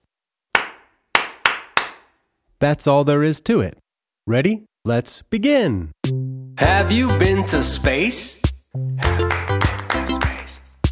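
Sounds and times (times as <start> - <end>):
hands clapping back a spoken rhythm: 0.5 - 2.2, 9.0 - 10.8
speech: 2.6 - 9.1.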